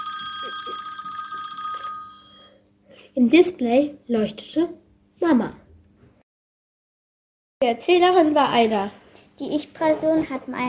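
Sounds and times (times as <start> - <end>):
mobile phone ringing with electronic trill: 0.0 - 2.6
speech: 3.2 - 5.6, 7.6 - 10.6.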